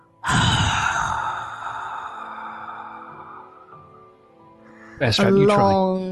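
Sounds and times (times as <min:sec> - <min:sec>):
voice imitating an exhale from inside a closed helmet: 0:00.2 - 0:03.9
speech: 0:05.0 - 0:06.1.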